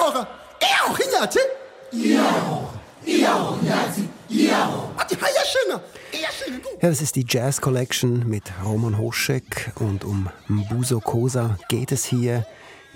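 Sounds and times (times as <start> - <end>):
speech: 0.2 - 12.9
choir singing: 1.9 - 5.0.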